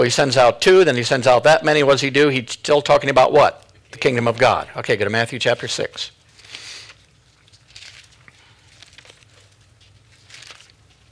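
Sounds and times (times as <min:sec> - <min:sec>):
speech: 0:00.0 - 0:06.2
faint low room hum: 0:00.0 - 0:11.1
pages of Bibles being turned: 0:05.4 - 0:11.1.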